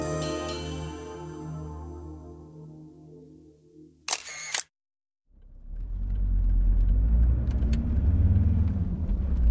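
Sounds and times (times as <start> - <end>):
sustained tonal passage: 0.1 - 4.1
car driving to the airport: 5.4 - 9.4.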